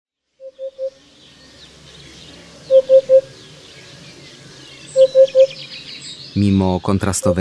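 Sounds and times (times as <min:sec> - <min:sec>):
birds chirping: 0:00.2 - 0:07.3
Eurasian hoopoe three-note hoots: 0:02.1 - 0:05.8
speech: 0:06.4 - 0:07.3.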